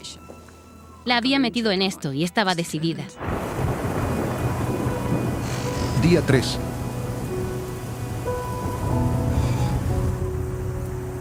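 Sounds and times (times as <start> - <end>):
speech: 1.0 - 3.4, 6.1 - 6.7
torrential rain pouring down on a mountain: 3.2 - 11.1.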